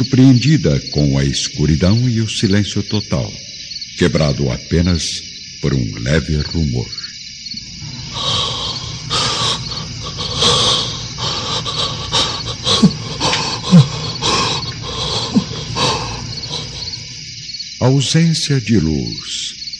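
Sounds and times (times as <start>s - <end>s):
speech: 0.0s - 7.0s, 17.8s - 19.4s
heavy labored agonizing breathing with rasping snorting breaths: 7.6s - 17.5s.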